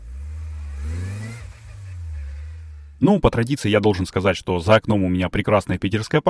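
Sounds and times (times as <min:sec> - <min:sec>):
car engine accelerating as it drives off in St. Petersburg in warm weather: 0:00.0 - 0:03.1
speech: 0:03.0 - 0:06.2.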